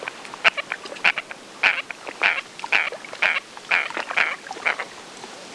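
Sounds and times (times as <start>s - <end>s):
Andean coot calling: 0.4s - 4.9s.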